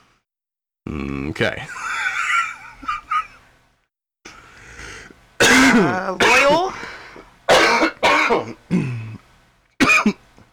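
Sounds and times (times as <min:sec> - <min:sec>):
speech: 0:00.9 - 0:01.8, 0:05.8 - 0:06.6
laughter: 0:01.6 - 0:03.4
man with a congested throat clearing throat: 0:05.4 - 0:06.8, 0:07.5 - 0:09.2, 0:09.8 - 0:10.2
man with a congested throat coughing: 0:05.4 - 0:06.8, 0:07.5 - 0:09.2, 0:09.8 - 0:10.2.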